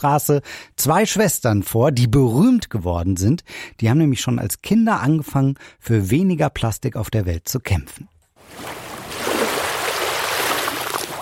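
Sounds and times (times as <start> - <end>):
speech: 0.0 - 8.8
ocean waves rolling onto a beach: 8.4 - 11.2.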